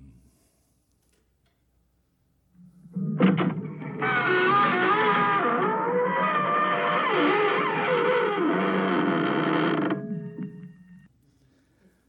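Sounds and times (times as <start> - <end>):
old door slowly creaking open: 3.2 - 10.8.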